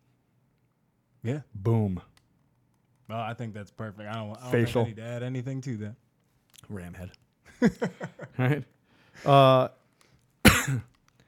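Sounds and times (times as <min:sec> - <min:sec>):
speech: 0:01.2 - 0:02.1, 0:03.1 - 0:09.8, 0:10.6 - 0:10.9
laughter: 0:07.5 - 0:08.7
person coughing into a microphone: 0:10.4 - 0:10.9.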